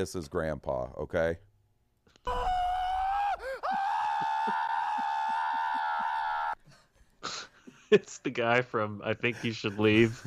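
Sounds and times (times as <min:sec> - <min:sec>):
speech: 0:00.0 - 0:01.5, 0:07.9 - 0:10.2
video game old man character screaming: 0:02.3 - 0:06.6.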